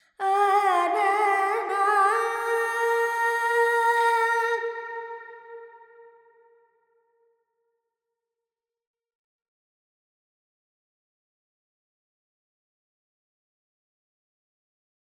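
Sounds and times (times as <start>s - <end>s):
Carnatic female alap vocals with reverb: 0.0s - 6.4s.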